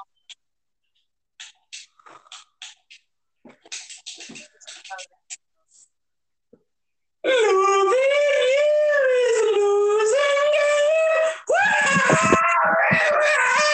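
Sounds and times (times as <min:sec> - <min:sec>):
person screaming and shouting: 0:07.3 - 0:13.7.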